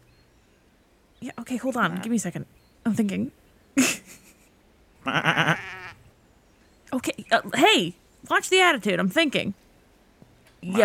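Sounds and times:
speech: 1.2s - 3.9s, 7.3s - 9.6s, 10.6s - 10.8s
sheep bleating: 5.0s - 6.1s.

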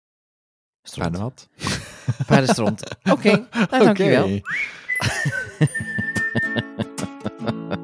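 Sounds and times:
speech: 0.9s - 6.7s
laughter: 1.6s - 7.8s
plucked rhythmic backing: 3.8s - 7.8s
whistled jingle melody over plucked rhythmic backing: 4.1s - 7.6s.

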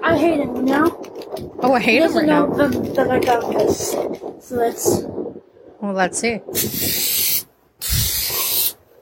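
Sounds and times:
speech: 0.1s - 5.2s, 5.8s - 7.4s
blue aerosol spray paint hissing from a can onto a car: 6.6s - 8.8s.

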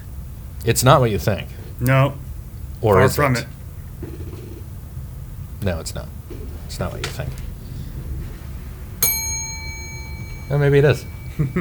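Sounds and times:
low rumble: 0.0s - 11.5s
speech: 0.6s - 2.2s, 2.8s - 4.2s, 5.6s - 7.4s, 10.5s - 11.5s
bright bell strike with sustained metallic tone: 9.0s - 11.5s.

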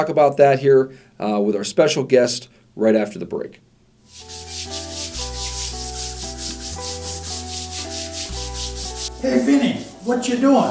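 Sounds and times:
speech: 0.0s - 4.8s, 9.2s - 10.7s
scrubbing a stain out of carpet: 4.1s - 10.7s.

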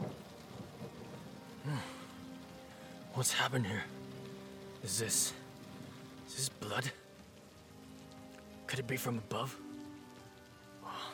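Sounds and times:
low rolling rumble of thunder: 0.0s - 1.4s
heavy rain drumming on a deck overhead: 0.0s - 11.1s
speech: 3.2s - 4.0s, 4.8s - 5.4s, 6.4s - 7.0s, 8.7s - 9.7s.

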